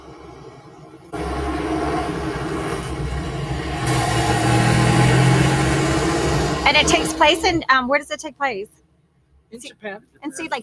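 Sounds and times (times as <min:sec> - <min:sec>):
Saab car engine driving and revving down Melrose: 0:01.2 - 0:07.7
speech: 0:06.7 - 0:08.8, 0:09.5 - 0:10.6.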